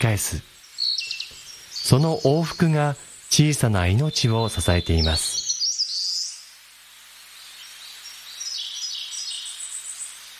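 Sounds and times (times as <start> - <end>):
speech: 0.0 - 0.5, 1.9 - 5.4
white tern calls: 0.0 - 6.6, 7.4 - 10.3.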